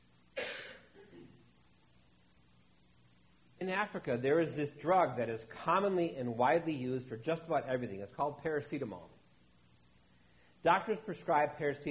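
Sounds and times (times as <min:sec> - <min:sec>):
person clearing throat: 0:00.4 - 0:01.5
person coughing: 0:00.4 - 0:01.5
speech: 0:03.6 - 0:09.1, 0:10.6 - 0:11.8.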